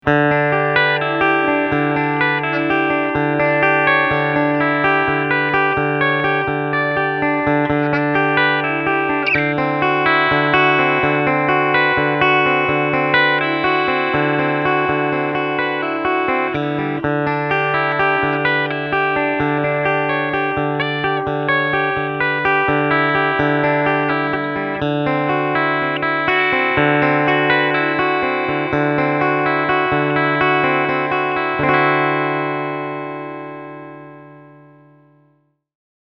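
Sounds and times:
Fender AM Acoustasonic Strat guitar playing: 0.0 - 35.3.

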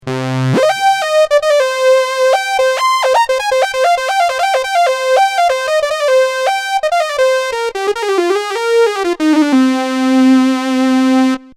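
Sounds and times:
synthesizer mini lead: 0.0 - 11.4.

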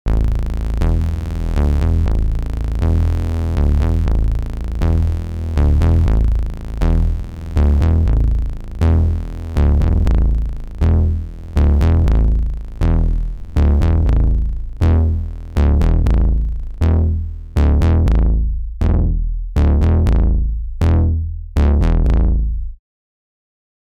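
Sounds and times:
Arturia Polybrute synthesizer filter bass with high-pass and low-pass filters: 0.0 - 22.8.

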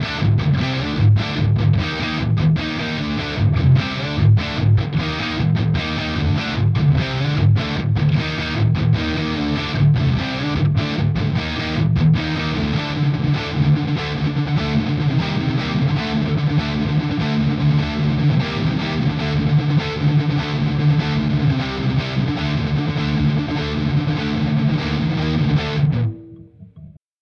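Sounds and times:
electric guitar neck pickup high gain: 0.0 - 27.0.

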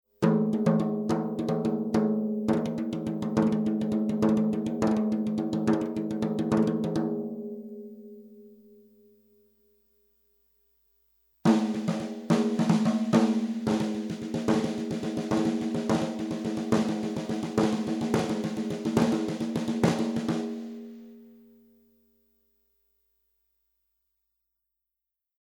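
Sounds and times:
snare drum: 0.2 - 7.2, 11.5 - 20.9.

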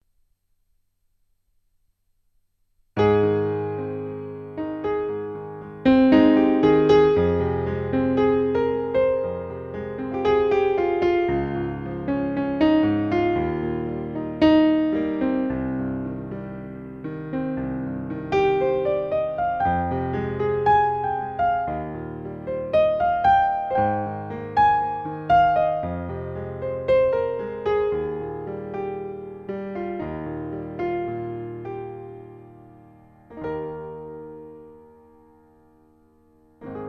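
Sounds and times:
DP7U piano: 2.9 - 36.8.

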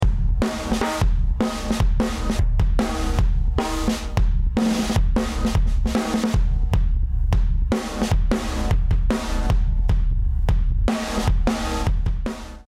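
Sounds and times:
drumbeat without cymbals with fast attack and slow release: 0.0 - 12.6.

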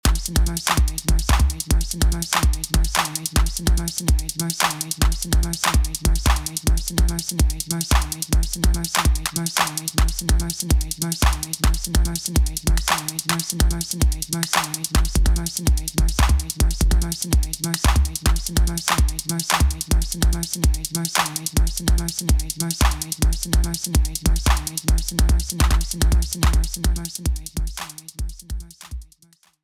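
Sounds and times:
kick drum: 0.0 - 4.3, 5.0 - 9.3, 10.0 - 12.9, 15.0 - 20.8, 21.6 - 29.1
clap: 0.1 - 1.6, 2.3 - 3.5, 4.6 - 6.6, 7.9 - 8.2, 9.0 - 10.1, 11.2 - 11.8, 12.9 - 13.5, 14.5 - 15.0, 16.2 - 16.5, 17.8 - 19.8, 21.2 - 21.4, 22.8 - 23.1, 24.5 - 24.8, 27.8 - 28.1, 28.8 - 29.6.

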